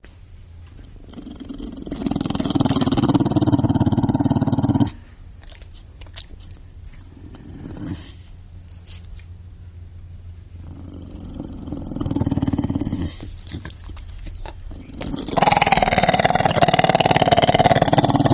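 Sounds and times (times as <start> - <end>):
Pit Bull threatening: 1.1 - 5.0, 7.0 - 8.1, 10.6 - 13.7, 14.5 - 18.3.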